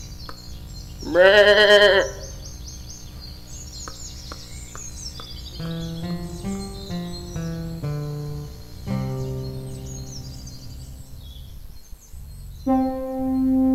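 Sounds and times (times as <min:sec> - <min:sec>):
faint bird chirps: 0:00.0 - 0:13.7
loud quavering sheep bleat: 0:01.0 - 0:02.3
soft sustained tones: 0:05.6 - 0:11.6.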